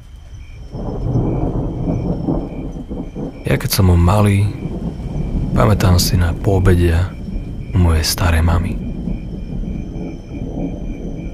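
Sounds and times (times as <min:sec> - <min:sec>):
deep rolling thunder: 0:00.0 - 0:11.3
steady rain: 0:00.0 - 0:11.3
speech: 0:03.5 - 0:04.6, 0:05.6 - 0:07.2, 0:07.8 - 0:08.8.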